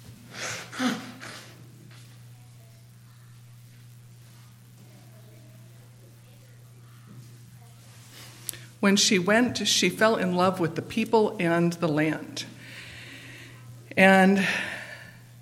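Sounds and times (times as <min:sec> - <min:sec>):
low steady hum: 0:00.0 - 0:15.4
nose blowing: 0:00.3 - 0:01.6
speech: 0:08.8 - 0:12.5, 0:14.0 - 0:14.7.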